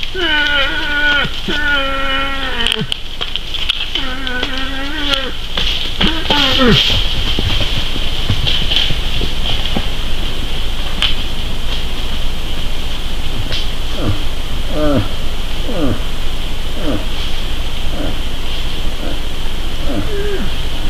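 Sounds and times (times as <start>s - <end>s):
moose mating calls: 0.1s - 3.0s, 3.8s - 6.8s, 13.8s - 20.8s
speech: 0.6s - 2.2s, 6.6s - 7.1s
steady high drone: 4.0s - 20.8s.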